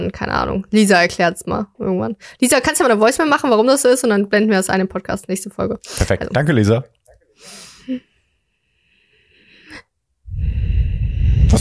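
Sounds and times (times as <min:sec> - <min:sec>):
speech: 0:00.0 - 0:08.1
noisy breathing through nose and throat: 0:07.3 - 0:11.5.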